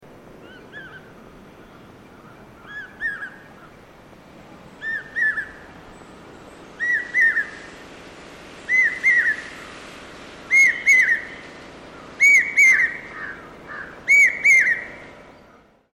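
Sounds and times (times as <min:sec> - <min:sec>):
common hawk cuckoo calling: 0:02.2 - 0:03.7, 0:04.8 - 0:05.6, 0:06.8 - 0:07.7, 0:08.7 - 0:09.8, 0:10.4 - 0:15.1.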